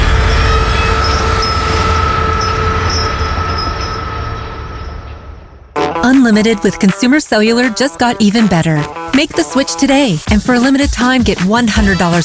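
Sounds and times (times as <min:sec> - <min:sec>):
steady tonal whine from train wheels: 0:00.0 - 0:05.8
train rumbling past: 0:00.0 - 0:06.4
speech: 0:06.2 - 0:12.2.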